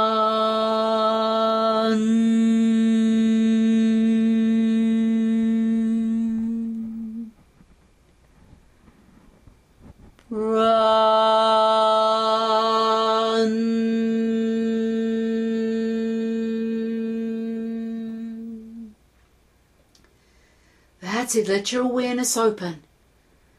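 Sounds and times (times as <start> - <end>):
single voice chanting a long steady resonant syllable: 0.0 - 7.3, 10.3 - 19.0
speech: 21.3 - 22.8.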